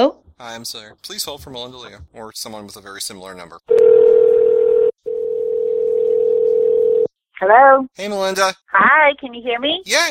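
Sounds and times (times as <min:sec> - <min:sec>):
speech: 0:00.0 - 0:04.0, 0:07.4 - 0:10.0
telephone dial tone: 0:03.7 - 0:07.1.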